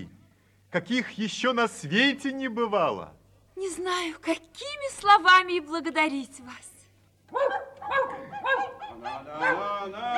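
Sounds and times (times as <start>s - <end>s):
speech: 0.7s - 6.7s, 7.3s - 10.1s
sled dogs barking and yelping in a squabble: 7.3s - 10.1s.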